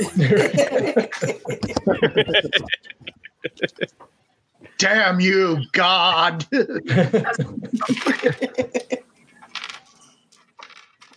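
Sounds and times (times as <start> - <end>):
speech: 0.0 - 3.0, 4.8 - 9.0
laughter: 0.0 - 4.0, 6.7 - 9.2
dice falling onto the floor during a tabletop role-playing game: 9.5 - 11.1.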